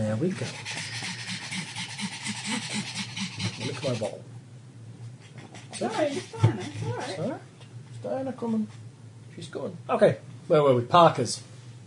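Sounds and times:
speech: 0.2 - 0.8, 3.6 - 4.4, 5.8 - 8.8, 9.4 - 11.5
dog panting: 0.3 - 4.2, 5.2 - 7.3.

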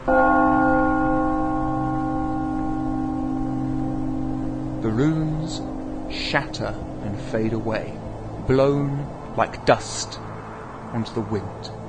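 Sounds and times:
large bell ringing from a single strike: 0.0 - 10.8
speech: 5.0 - 10.3, 10.9 - 11.8.

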